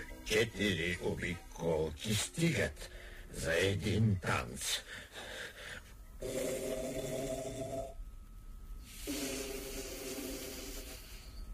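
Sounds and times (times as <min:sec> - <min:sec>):
speech: 0:00.3 - 0:05.1, 0:06.2 - 0:06.8
loud snoring: 0:06.2 - 0:08.0, 0:08.9 - 0:11.3.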